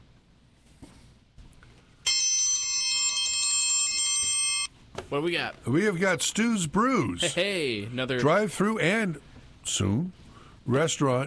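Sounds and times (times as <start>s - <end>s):
loud bell ringing: 2.1s - 4.7s
speech: 5.1s - 11.2s.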